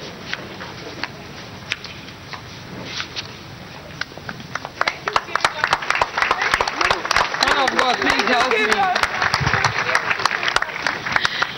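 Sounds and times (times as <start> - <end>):
audience clapping: 4.0 - 11.5.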